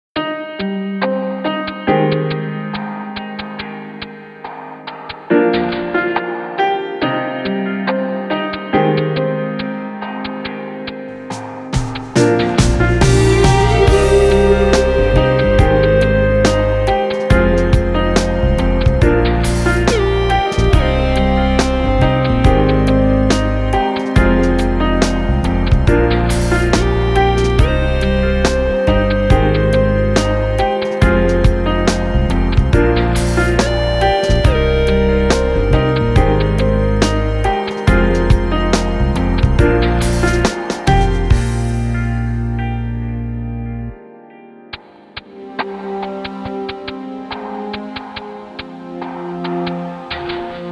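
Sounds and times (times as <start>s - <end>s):
abstract lounge music: 0.3s - 50.7s.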